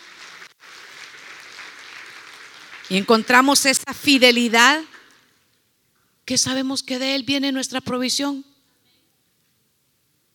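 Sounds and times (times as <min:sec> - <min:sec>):
audience clapping hands: 0:00.0 - 0:03.4
speech: 0:02.9 - 0:04.9, 0:06.3 - 0:08.5.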